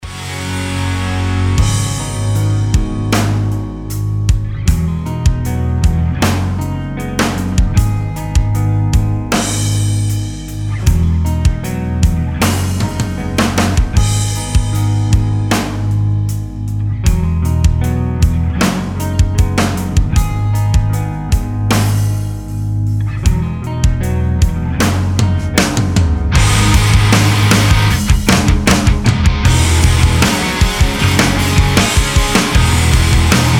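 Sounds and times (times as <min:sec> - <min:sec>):
rock music: 0:00.0 - 0:33.5.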